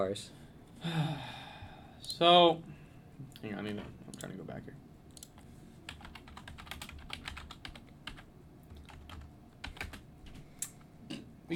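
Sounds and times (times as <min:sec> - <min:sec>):
speech: 0:00.0 - 0:01.4, 0:02.0 - 0:02.7, 0:03.4 - 0:04.8
low hum: 0:00.0 - 0:11.5
rapid typing on an old clacky mechanical computer keyboard: 0:05.2 - 0:10.0.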